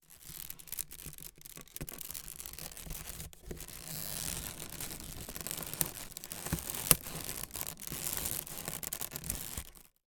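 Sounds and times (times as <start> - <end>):
basket small movement stress squeak: 1.9 - 9.9.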